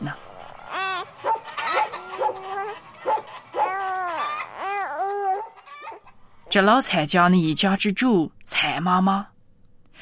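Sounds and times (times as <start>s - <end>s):
small children and babies babbling and squealing: 0.7s - 6.0s
dog barking beside a house: 1.2s - 4.4s
speech: 6.5s - 9.3s.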